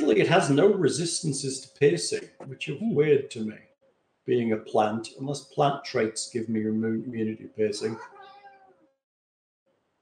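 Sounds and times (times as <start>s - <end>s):
indistinct noise: 0.0s - 8.1s
speech: 0.1s - 8.2s
cat meowing: 7.8s - 8.9s.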